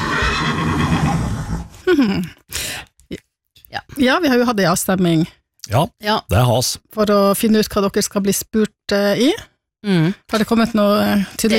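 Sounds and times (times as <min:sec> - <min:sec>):
horse neighing: 0:00.0 - 0:01.7
speech: 0:02.0 - 0:11.5.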